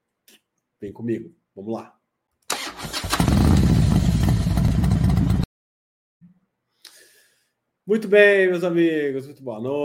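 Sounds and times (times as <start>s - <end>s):
speech: 0.8s - 2.0s, 7.9s - 9.8s
motorcycle engine starting and revving in an intro jingle: 2.8s - 5.5s.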